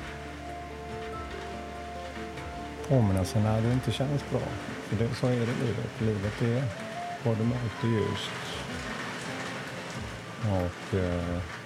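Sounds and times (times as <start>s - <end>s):
heavy rain pouring down outside: 0.0s - 11.6s
speech: 2.9s - 8.6s, 10.4s - 11.6s.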